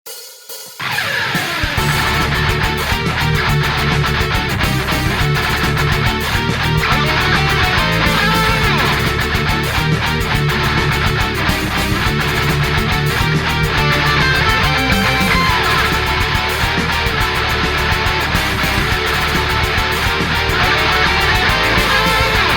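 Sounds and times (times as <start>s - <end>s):
rock cover song: 0.5s - 22.5s.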